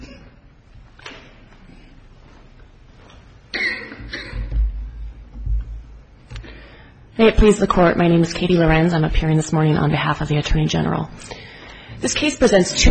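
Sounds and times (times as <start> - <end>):
person coughing harshly: 0.0 - 0.5, 3.5 - 4.6
low thumps: 4.4 - 6.4
speech: 7.2 - 11.4, 12.0 - 12.8.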